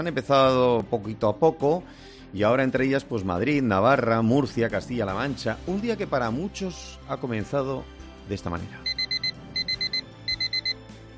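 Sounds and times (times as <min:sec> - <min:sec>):
speech: 0:00.0 - 0:08.9
electronic alarm clock beeping: 0:08.9 - 0:10.8.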